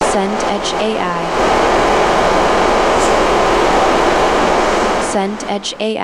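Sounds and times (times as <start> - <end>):
crowd murmur: 0.0 - 6.0.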